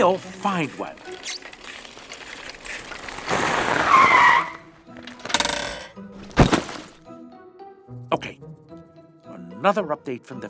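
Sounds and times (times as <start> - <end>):
speech: 0.0 - 1.5, 9.6 - 10.4
bicycle skidding to a stop at a bike rack: 0.0 - 4.7
clunks and rattles: 0.7 - 3.5, 5.2 - 7.0.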